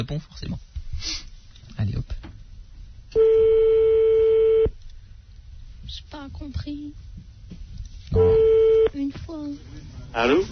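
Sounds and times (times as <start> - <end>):
speech: 0.0 - 2.2, 6.1 - 7.2, 8.9 - 10.5
telephone tone while dialing a landline number: 3.1 - 4.7, 8.2 - 9.0.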